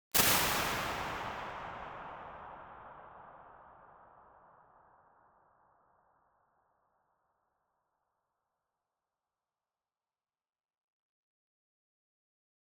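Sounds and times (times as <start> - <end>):
damped cave impulse response: 0.2 - 3.2.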